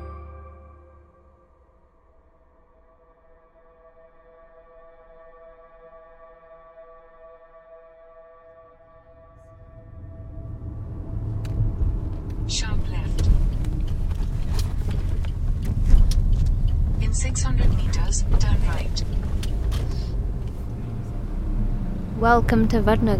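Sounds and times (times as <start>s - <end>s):
auto rickshaw and traffic engine rumble: 9.3s - 23.1s
vehicles passing on a busy street: 9.3s - 23.1s
speech: 17.2s - 19.6s, 22.2s - 23.1s.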